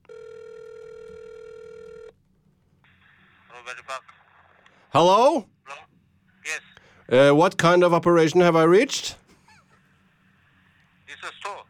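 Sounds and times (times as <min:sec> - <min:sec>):
electronic telephone ring tone: 0:00.0 - 0:02.1
speech: 0:03.6 - 0:04.2, 0:04.9 - 0:05.8, 0:06.5 - 0:09.2.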